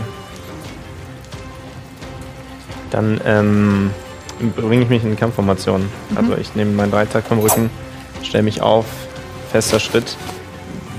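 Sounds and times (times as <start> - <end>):
heavy rain pouring and pattering on surfaces: 0.0 - 8.6
speech: 2.9 - 10.4.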